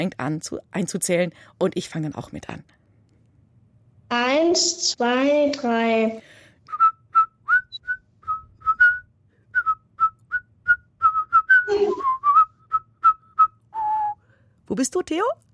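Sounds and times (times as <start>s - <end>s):
speech: 0.0s - 2.8s, 4.1s - 6.4s, 14.7s - 15.4s
two people whistling a children's song melody: 6.7s - 14.2s.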